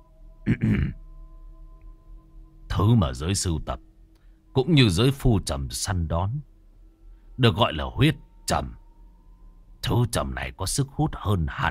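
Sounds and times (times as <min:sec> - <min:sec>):
man clearing his throat: 0:00.4 - 0:01.0
speech: 0:02.8 - 0:03.9, 0:04.6 - 0:06.5, 0:07.4 - 0:08.8, 0:09.8 - 0:11.6.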